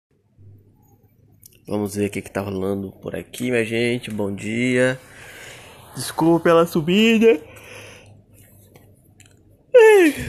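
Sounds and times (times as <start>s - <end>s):
faint low hum: 0.2s - 10.2s
speech: 1.7s - 5.3s, 6.0s - 7.5s
loud yawn ending in a voiced groan: 9.7s - 10.2s.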